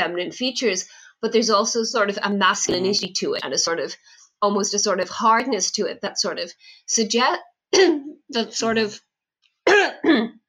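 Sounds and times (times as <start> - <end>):
speech: 0.0 - 9.1, 10.0 - 10.4
harsh throaty coughs: 2.7 - 3.0, 9.7 - 10.3
throat clearing: 2.7 - 3.0.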